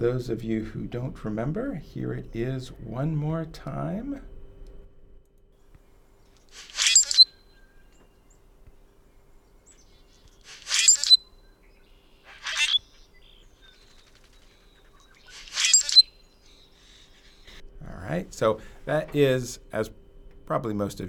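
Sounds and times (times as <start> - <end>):
speech: 0.0 - 4.3, 18.4 - 21.0
bird calling: 5.8 - 17.7.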